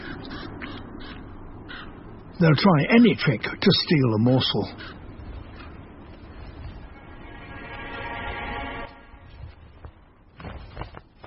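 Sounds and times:
hungry crows cawing at a dead fox carcass in winter: 0.0s - 2.1s, 4.6s - 5.8s
speech: 2.4s - 5.0s
low rumble of noise: 5.0s - 10.1s.

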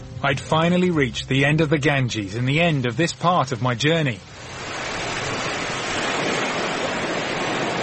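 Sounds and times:
speech: 0.2s - 4.3s
ocean surf washing onto a beach: 2.1s - 7.8s.

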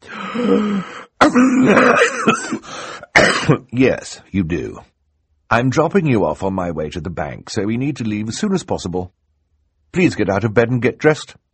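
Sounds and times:
person acting out rough coughs and throat-clearing: 0.4s - 3.8s
speech: 0.4s - 4.9s, 5.5s - 9.2s, 9.9s - 11.4s.

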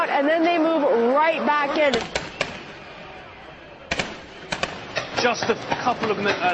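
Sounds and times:
speech: 0.0s - 2.3s, 5.2s - 6.5s
police firing a volley of tear gas: 1.9s - 2.9s, 3.9s - 5.5s.

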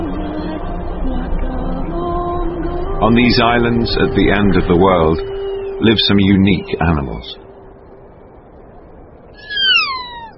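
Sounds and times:
faint hum: 0.0s - 10.3s
speech: 3.0s - 7.4s
kea alpine parrot screech: 9.4s - 10.3s.

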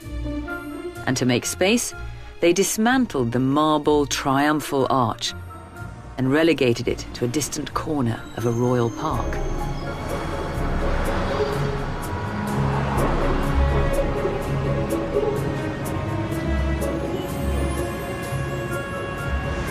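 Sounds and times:
speech: 1.0s - 5.5s, 6.2s - 9.8s
indistinct voices: 4.9s - 19.6s
busy city traffic around a monument: 5.3s - 19.6s.

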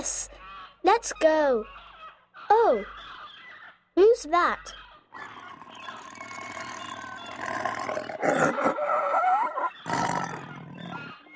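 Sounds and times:
speech: 0.0s - 1.8s, 2.5s - 3.0s, 4.0s - 5.3s
tiger roaring and snarling: 5.2s - 11.1s.

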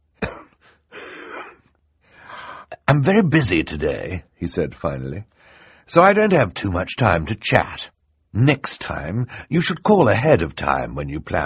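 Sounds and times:
man coughing into a handkerchief: 0.2s - 1.7s
speech: 2.9s - 11.4s.

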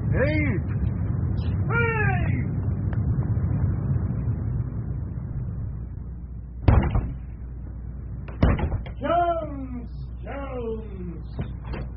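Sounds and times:
low rumbling background: 0.0s - 11.9s
speech: 0.1s - 0.9s
door or latch bang: 6.6s - 7.2s, 8.3s - 9.0s
door shutting with a thud: 6.6s - 7.2s, 8.3s - 9.0s, 11.4s - 11.9s.

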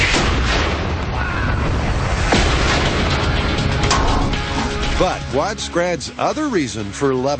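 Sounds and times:
50-pound ANFO explosive detonation in lagoon water: 0.0s - 5.3s
speech: 5.0s - 7.3s.

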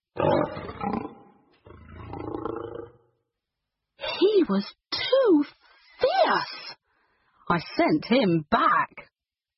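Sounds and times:
lion roaring: 0.2s - 3.0s
speech: 4.5s - 5.6s, 7.5s - 8.9s.

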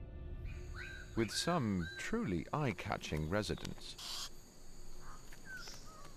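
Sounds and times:
insects droning in the forest: 0.2s - 6.1s
Goldie's bird of paradise giving harsh crow-like calls: 0.4s - 2.1s, 4.0s - 6.1s
speech: 1.2s - 4.2s.

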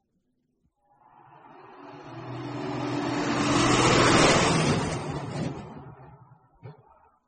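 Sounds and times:
road noise: 0.9s - 6.7s
lorry passing: 1.0s - 6.2s.

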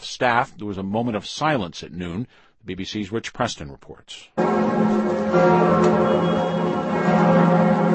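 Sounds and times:
speech: 0.2s - 7.9s
large Notre Dame cathedral bells ringing: 4.4s - 7.9s.

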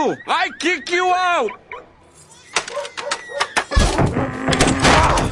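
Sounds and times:
speech: 0.1s - 1.6s
broken door rattling and creaking: 2.4s - 5.3s.

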